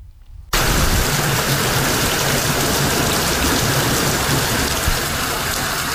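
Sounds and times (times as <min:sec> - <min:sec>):
heavy rain during seasonal flooding in Kenya: 0:00.6 - 0:05.9.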